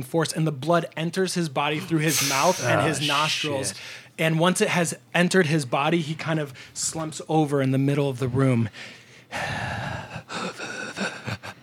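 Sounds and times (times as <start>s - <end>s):
speech: 0.0s - 9.7s
narrator imitating heavy ragged breathing: 1.8s - 3.1s, 3.7s - 4.1s, 8.7s - 11.6s.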